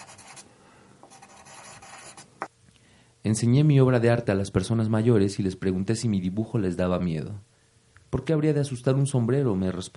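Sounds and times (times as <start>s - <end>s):
colored pencil scratching across paper: 0.0s - 0.4s, 1.1s - 2.3s
speech: 3.2s - 7.5s, 8.1s - 9.9s.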